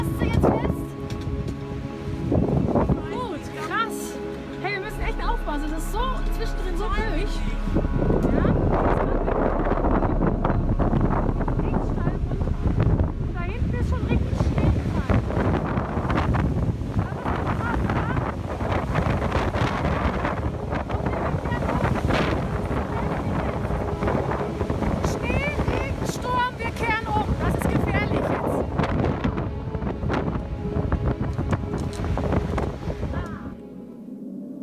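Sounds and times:
strong storm wind on a high mountain trail buffeting the microphone: 0.0 - 33.8.

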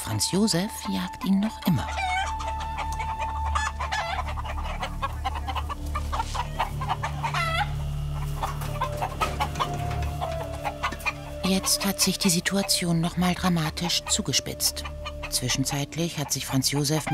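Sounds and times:
low farmyard hum: 0.0 - 17.1
speech: 0.1 - 2.2, 11.5 - 17.1
chickens clucking: 0.1 - 17.1
rooster crowing: 1.9 - 7.9, 8.7 - 11.4.

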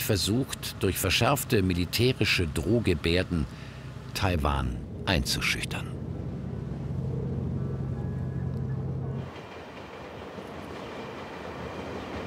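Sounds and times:
train running on rails through the Kaohsiung area of Taiwan: 0.0 - 12.2
speech: 0.1 - 3.6, 4.2 - 6.0.

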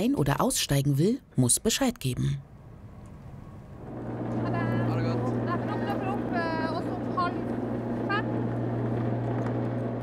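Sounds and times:
speech: 0.0 - 2.5
light ferry engine rumble moving through water: 2.4 - 10.0.

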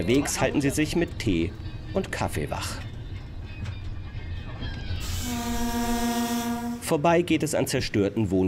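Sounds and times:
speech: 0.0 - 2.9, 6.9 - 8.4
train rolling slowly along the rails through the countryside: 0.0 - 8.4
train horn blast: 5.0 - 7.0.

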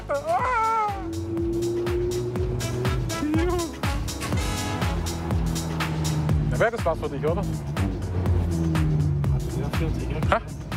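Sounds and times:
Ferrari F430 sports car engine droning on the road: 0.0 - 10.7
speech: 6.6 - 7.9, 9.8 - 10.6.

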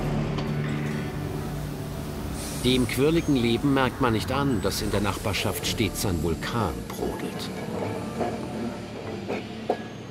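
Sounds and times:
old-fashioned tram rolling on rails in a city in southern Japan: 0.0 - 10.1
tram wheels clacking and squealing: 2.4 - 10.1
speech: 2.6 - 8.4.

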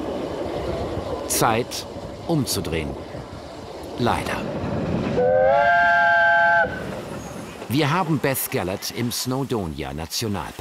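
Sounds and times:
train rumbling on a mountain railway in Snowdonia National Park: 0.0 - 10.5
speech: 1.3 - 3.1, 4.0 - 4.6, 7.7 - 10.5
multi-toned train whistle on a mountain railway in Snowdonia National Park: 5.2 - 6.9.

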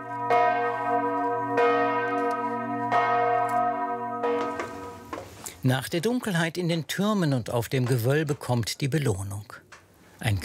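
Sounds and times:
church bells ringing: 0.0 - 5.3
speech: 5.6 - 9.6, 10.2 - 10.4.

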